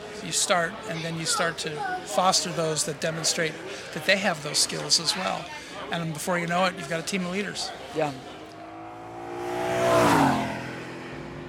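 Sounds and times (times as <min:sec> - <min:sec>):
speech: 0:00.2 - 0:08.4
BMW V12 race car engine roaring past in an IMSA race: 0:08.2 - 0:11.4.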